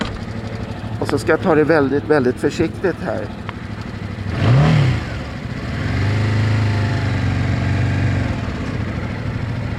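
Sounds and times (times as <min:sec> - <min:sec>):
speech: 0:01.1 - 0:03.4
motorcycle engine pulling away in first gear at low revs: 0:03.8 - 0:09.7.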